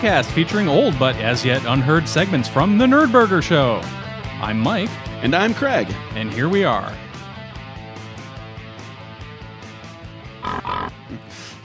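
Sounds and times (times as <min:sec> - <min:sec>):
speech: 0:00.0 - 0:07.0
pig oinking sound effect: 0:10.4 - 0:11.3.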